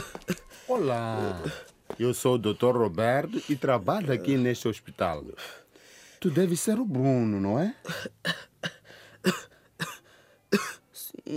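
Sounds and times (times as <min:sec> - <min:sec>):
boy with a persistent cough coughing harshly: 0:00.0 - 0:00.5, 0:07.8 - 0:10.8
speech: 0:00.7 - 0:05.6, 0:06.2 - 0:08.4, 0:09.2 - 0:09.5.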